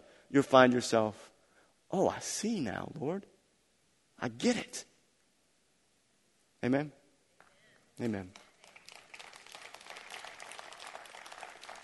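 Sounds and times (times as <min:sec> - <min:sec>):
speech: 0:00.3 - 0:01.3, 0:01.9 - 0:03.3, 0:04.2 - 0:04.9, 0:06.6 - 0:07.0, 0:08.0 - 0:08.4
audience clapping and applauding: 0:08.0 - 0:11.8.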